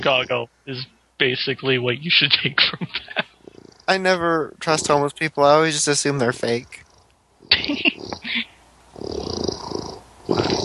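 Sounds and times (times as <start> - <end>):
laughter: 0.0 - 3.2, 7.5 - 8.4
speech: 0.0 - 3.2, 3.9 - 6.8, 7.7 - 7.9
house cat purring: 0.0 - 10.6.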